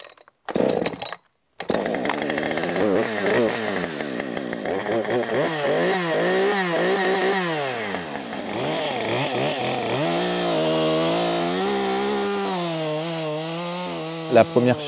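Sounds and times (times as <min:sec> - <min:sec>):
chainsaw cutting wood: 0:00.5 - 0:14.8
speech: 0:14.4 - 0:14.8.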